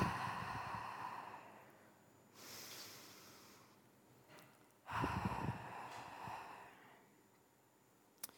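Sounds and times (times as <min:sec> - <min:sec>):
deep breath in through the nose and out through the mouth during a guided breathing exercise: 0:00.0 - 0:03.9, 0:04.8 - 0:07.3
faint steady tone: 0:00.0 - 0:08.3.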